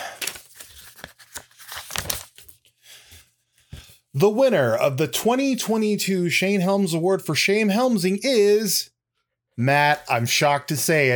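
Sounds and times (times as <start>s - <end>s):
paper envelope being torn open: 0.2s - 2.5s
speech: 4.2s - 8.9s, 9.6s - 11.1s.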